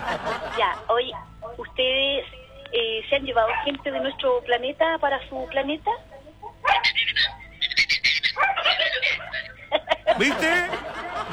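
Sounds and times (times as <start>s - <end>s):
laughter: 0.0s - 1.1s, 8.8s - 11.3s
speech: 0.6s - 6.1s, 10.1s - 11.3s
dog yipping and whining: 6.6s - 9.6s.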